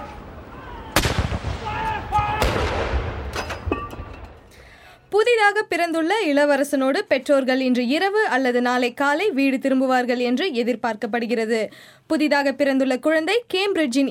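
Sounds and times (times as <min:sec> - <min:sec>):
cannon blasts of a military gun salute: 0:00.9 - 0:04.5
speech: 0:05.5 - 0:14.0.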